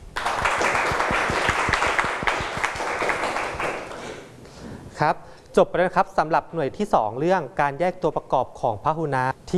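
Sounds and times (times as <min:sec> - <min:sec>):
group of students applauding: 0:00.0 - 0:04.3
speech: 0:05.0 - 0:09.5.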